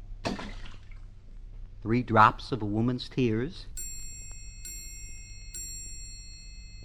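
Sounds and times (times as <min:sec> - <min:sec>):
liquid sloshing and bubbling in a witch's cauldron: 0:00.2 - 0:01.2
speech: 0:01.8 - 0:04.0.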